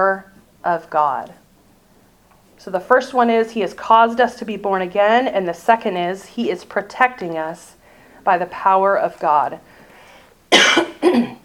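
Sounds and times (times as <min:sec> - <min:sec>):
speech: 0:00.0 - 0:01.4, 0:02.6 - 0:09.7
person coughing: 0:10.5 - 0:11.4.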